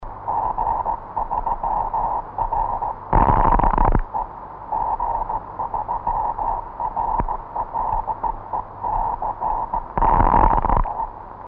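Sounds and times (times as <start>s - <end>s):
RF heater: 0.0s - 11.4s.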